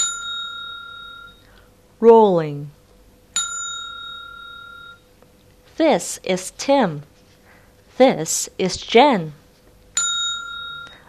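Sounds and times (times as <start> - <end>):
bell rung as a signal to turn the page: 0.0 - 1.5, 3.4 - 5.0, 10.0 - 11.0
speech: 2.0 - 2.8, 5.8 - 7.1, 8.0 - 9.4.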